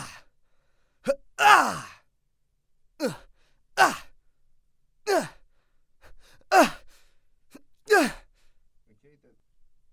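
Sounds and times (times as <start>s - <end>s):
man breathing: 0.4s - 1.1s, 5.4s - 7.3s, 8.2s - 8.7s.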